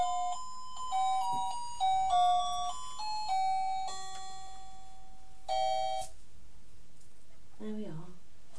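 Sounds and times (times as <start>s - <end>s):
beeping electronic Christmas melody from musical window lights: 0.0s - 6.1s.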